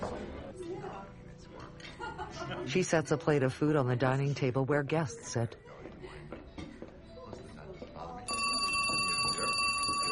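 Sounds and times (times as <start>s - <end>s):
laughter: 1.8s - 2.8s
speech: 2.4s - 5.8s
telephone ringing in a home kitchen: 8.3s - 10.1s.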